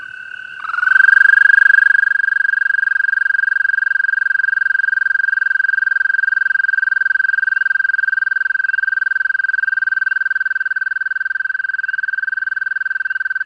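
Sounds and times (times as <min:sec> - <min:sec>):
male American toad Bufo americanus breeding trill: 0:00.0 - 0:13.4.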